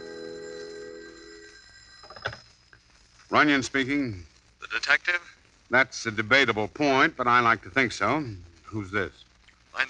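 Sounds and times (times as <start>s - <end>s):
telephone bell ringing with a metallic trill: 0.0s - 2.8s
speech: 3.3s - 9.8s.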